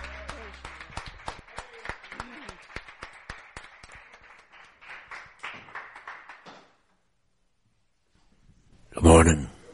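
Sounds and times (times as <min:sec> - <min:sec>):
audience voices cheering: 0:00.0 - 0:02.7
audience clapping: 0:00.0 - 0:07.0
speech: 0:09.0 - 0:09.5.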